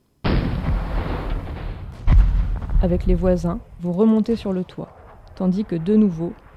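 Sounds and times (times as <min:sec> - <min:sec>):
mortar fire blast rolling into a low rumble: 0:00.2 - 0:06.5
loud thump of mortar fire: 0:00.3 - 0:03.8
speech: 0:02.8 - 0:06.4.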